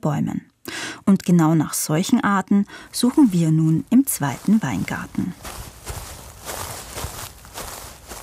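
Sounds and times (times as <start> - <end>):
speech: 0.0 - 0.5, 1.1 - 5.7
footsteps through tall vineyard vegetation: 2.8 - 8.2.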